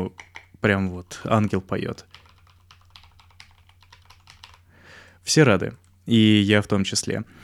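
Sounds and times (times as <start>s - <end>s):
speech: 0.0s - 2.2s, 5.3s - 7.4s
typing on a foam-filled mechanical keyboard with lubricated switches: 0.1s - 0.5s, 1.4s - 4.6s.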